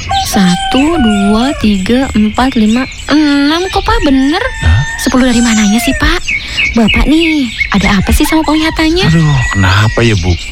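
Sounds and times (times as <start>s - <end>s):
rooster crowing: 0.0s - 2.0s, 3.5s - 6.2s, 8.0s - 10.0s
chickens clucking: 0.0s - 10.4s
speech: 0.3s - 10.4s.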